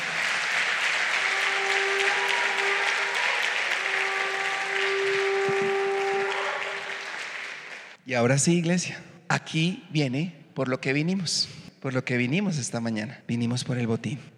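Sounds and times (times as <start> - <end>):
shofar blasts at a church service: 0.0 - 7.8
crowd noise: 0.0 - 8.0
loud applause: 0.0 - 8.0
speech: 8.1 - 14.3.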